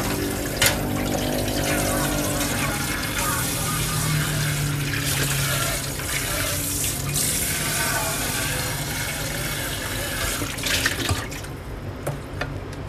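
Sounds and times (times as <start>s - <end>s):
steady rushing tap water: 0.0s - 12.8s.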